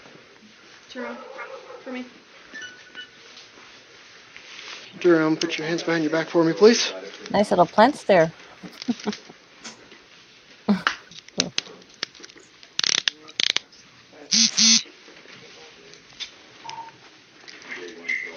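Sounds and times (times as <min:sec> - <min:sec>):
speech: 0:01.0 - 0:02.2, 0:05.0 - 0:09.2
laughter: 0:08.6 - 0:09.3, 0:10.7 - 0:11.5
handcuffs ratcheting shut on a person's hands behind their back: 0:12.8 - 0:13.6.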